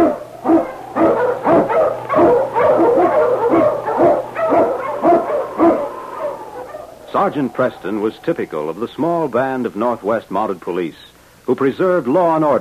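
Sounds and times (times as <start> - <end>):
pack of husky sled dogs barking, yipping and howling: 0.0 - 9.2
speech: 7.2 - 12.5.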